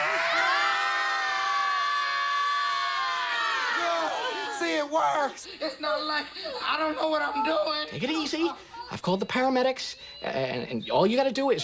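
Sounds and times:
group of people screaming: 0.0s - 4.9s
shrill whoops and yells: 0.0s - 4.9s
speech: 4.9s - 11.6s.

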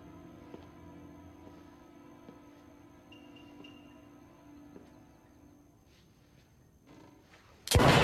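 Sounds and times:
faint low hum: 0.0s - 8.0s
gunshot from a gun: 7.7s - 8.0s.

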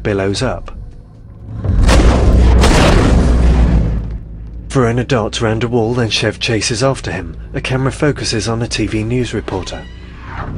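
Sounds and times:
speech: 0.0s - 0.8s, 4.7s - 10.0s
gunshot blasting the plaster head off a jockey figure: 1.6s - 4.1s.

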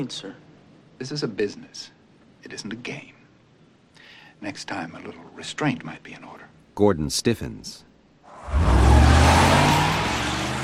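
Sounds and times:
speech: 0.0s - 0.4s, 1.0s - 3.2s, 4.4s - 7.9s
sports car tires spinning on a snowy street: 8.3s - 10.6s
sports car accelerating hard: 8.4s - 10.6s.

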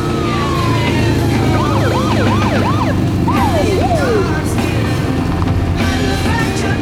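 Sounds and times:
police car siren: 0.0s - 5.0s
traffic rumble on a suburban street: 0.0s - 6.5s.

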